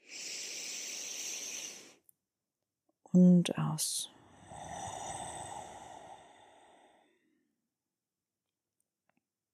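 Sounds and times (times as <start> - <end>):
deep breath in during a guided meditation: 0.0 - 2.0, 4.1 - 7.5
speech: 3.1 - 4.2.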